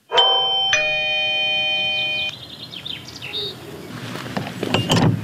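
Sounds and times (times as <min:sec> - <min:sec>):
doorbell at wooden farmhouse gate with two-note ding-dong chime: 0:00.0 - 0:02.3
birds chirping outdoors: 0:01.6 - 0:05.1
faint rustling: 0:03.8 - 0:04.8.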